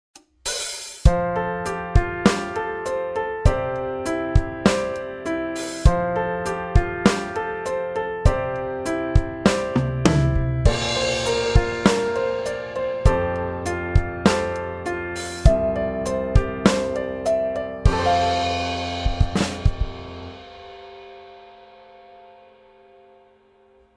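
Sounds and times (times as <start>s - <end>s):
pop ballad piano chord progression: 1.0s - 23.9s.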